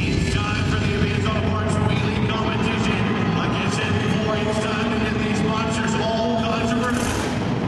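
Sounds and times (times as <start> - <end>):
monster truck engines revving: 0.0 - 7.6.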